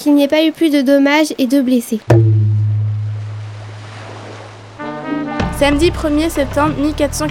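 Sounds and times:
speech: 0.0 - 2.4, 5.6 - 7.2
rough stormy sea surf: 2.1 - 5.0.

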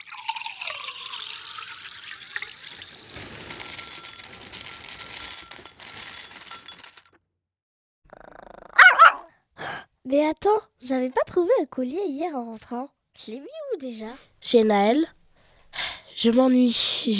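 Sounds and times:
steady watery hiss: 0.0 - 5.0
dogs growling and shuffling in a chalet in a mountain forest: 8.1 - 9.3
sharp loud dog bark: 8.8 - 9.3
speech: 10.1 - 15.2, 16.2 - 17.1.

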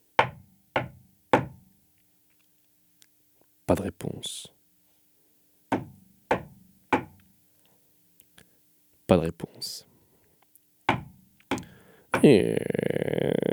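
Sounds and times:
knocking on a wooden castle door: 0.2 - 1.6, 5.7 - 7.2, 10.9 - 11.6
speech: 3.7 - 4.6, 9.1 - 9.9, 12.2 - 13.4.

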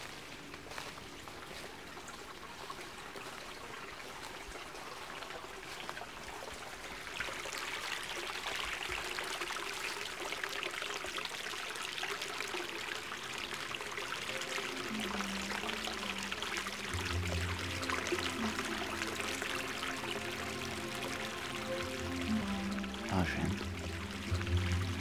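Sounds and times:
water gurgling and running: 0.0 - 24.9
low bubbling tones of water: 13.0 - 24.9.

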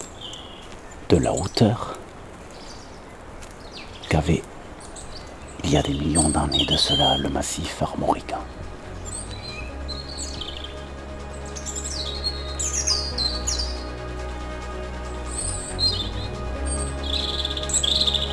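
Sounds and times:
birds chirping outdoors: 0.0 - 18.3
speech: 1.1 - 2.0, 4.1 - 4.5, 5.7 - 8.6
steady low hum: 5.3 - 18.3.

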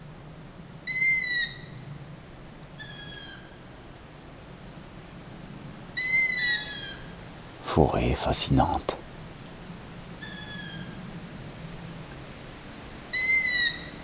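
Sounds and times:
night birds calling in shrill drawn-out cries: 0.9 - 1.9, 2.8 - 3.9, 6.0 - 8.8, 10.2 - 11.0, 13.1 - 14.0
speech: 7.8 - 9.0.

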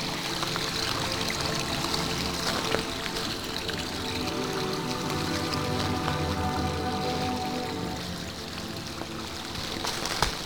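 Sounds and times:
small brook trickling and babbling in a mountain forest: 0.0 - 10.4
soft splashes of water: 0.0 - 10.4.

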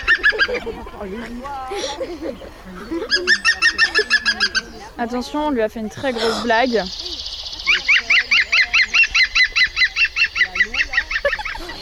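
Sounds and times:
green woodpecker laughing call played through a portable speaker in a park: 0.0 - 5.0, 5.9 - 11.7
speech: 0.7 - 7.1.

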